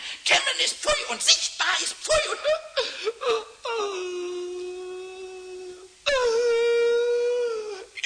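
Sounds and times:
speech: 0:00.5 - 0:02.7
acted whimpering and crying from a small kobold character: 0:02.1 - 0:07.9.

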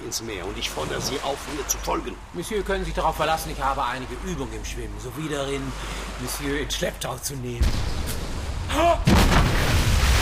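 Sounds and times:
speech: 0:00.1 - 0:08.1, 0:08.7 - 0:09.6
warship firing its guns at sea: 0:07.6 - 0:10.2.

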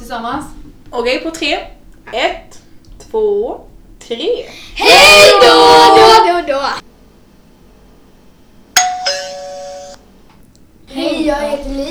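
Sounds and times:
speech: 0:00.1 - 0:06.9
doorbell ringing with a two-tone ding-dong: 0:08.8 - 0:10.0.

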